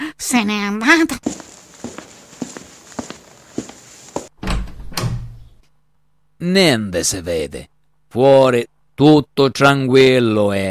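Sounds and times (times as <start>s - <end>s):
speech: 0.2s - 1.4s, 6.4s - 10.6s
footsteps: 1.1s - 4.3s
heavy door thumping and rattling as it swings open at night: 4.4s - 5.4s.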